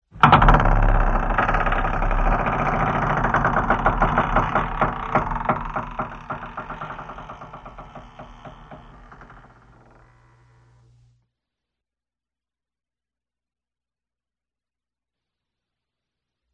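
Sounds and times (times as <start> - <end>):
creaking door closing: 0.2 - 11.1.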